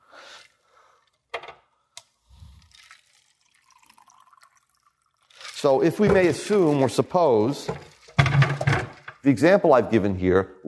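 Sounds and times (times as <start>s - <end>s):
water pouring into a glass: 2.4s - 6.8s, 7.7s - 8.4s
speech: 5.6s - 7.9s, 9.2s - 10.6s.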